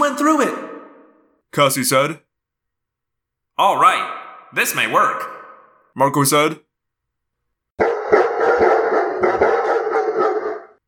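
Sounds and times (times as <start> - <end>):
speech: 1.6 - 2.3, 3.6 - 5.4, 6.0 - 6.7
several dogs barking: 7.8 - 10.8.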